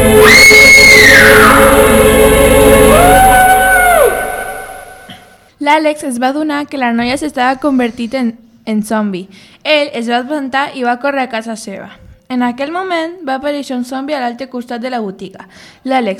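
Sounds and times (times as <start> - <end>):
young woman screaming: 0.2 - 2.1, 2.9 - 5.3
speech: 5.7 - 16.1.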